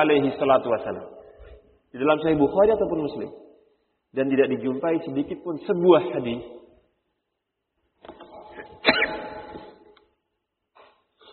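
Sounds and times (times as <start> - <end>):
speech: 0.0 - 1.2, 1.9 - 3.5, 4.1 - 6.6
sneeze: 8.8 - 9.8.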